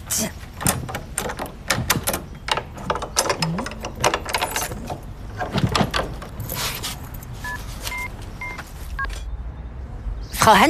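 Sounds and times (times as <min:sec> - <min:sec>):
speech: 0:00.1 - 0:00.4, 0:10.5 - 0:10.6
bunch of house keys jingling outside a new apartment: 0:00.6 - 0:07.9
electronic phone keypad beeps: 0:07.4 - 0:09.2.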